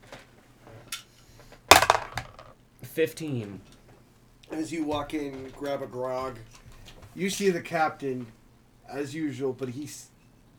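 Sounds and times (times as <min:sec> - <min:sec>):
dice rolling on a hard table: 0:01.7 - 0:02.5
speech: 0:03.0 - 0:03.7, 0:04.5 - 0:06.6, 0:07.2 - 0:10.1.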